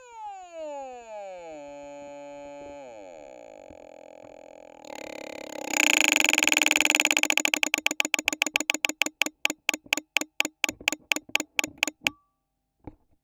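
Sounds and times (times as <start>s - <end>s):
relay percussion through a piezo on a eurorack module: 4.9s - 12.1s.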